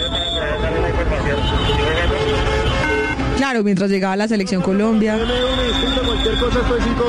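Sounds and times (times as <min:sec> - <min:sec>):
murmur of crowd voices: 0:00.0 - 0:03.4, 0:04.1 - 0:07.0
cars passing on a busy road: 0:00.0 - 0:07.0
speech: 0:03.5 - 0:07.0.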